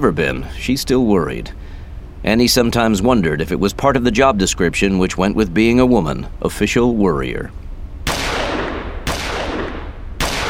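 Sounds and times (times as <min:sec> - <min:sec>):
speech: 0:00.0 - 0:07.6
gunshots from a shooter firing through loaded magazines: 0:08.1 - 0:10.4.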